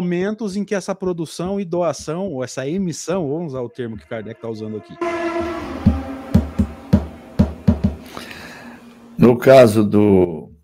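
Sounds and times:
speech: 0.0s - 5.5s, 9.2s - 10.4s
low thumps: 1.3s - 8.2s
loud motorcycle passing outside: 4.4s - 9.2s
motorcycle engine sharp rhythmic revving bursts: 5.0s - 9.2s.

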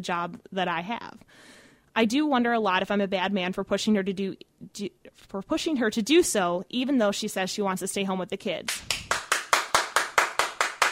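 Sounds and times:
speech: 0.0s - 9.0s
hands clapping after a team scored: 8.7s - 10.9s.

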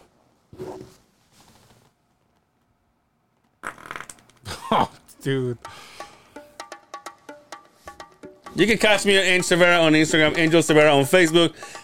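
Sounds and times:
fart: 3.6s - 4.5s
speech: 4.7s - 5.9s, 8.6s - 11.8s.

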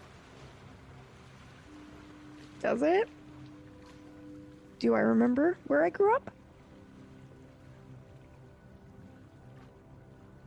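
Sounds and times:
continuous wash of ocean water outside: 0.0s - 10.4s
speech: 2.6s - 3.2s, 4.8s - 6.4s.

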